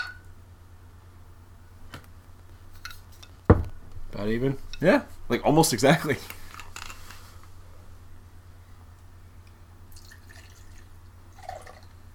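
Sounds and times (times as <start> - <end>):
low hum: 0.0 - 12.1
speech: 4.2 - 6.4
liquid pouring into a glass: 9.9 - 12.1.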